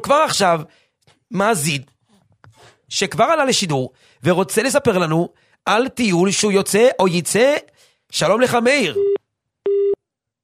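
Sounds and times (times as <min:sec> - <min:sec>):
speech: 0:00.0 - 0:01.9, 0:02.9 - 0:09.2
busy-signal tone on a phone line after a caller drops off: 0:09.0 - 0:10.0.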